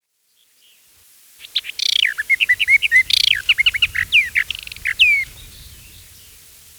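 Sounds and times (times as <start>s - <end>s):
Eastern Orphean warbler singing: 1.4s - 6.7s.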